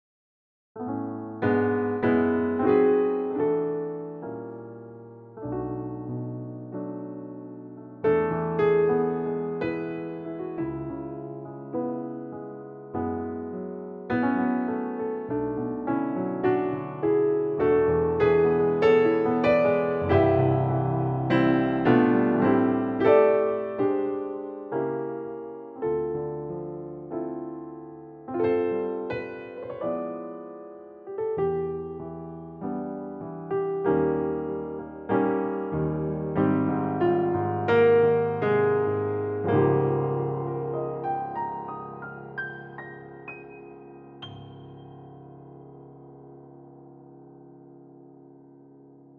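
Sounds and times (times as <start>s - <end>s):
classic grand piano: 0.8s - 49.1s.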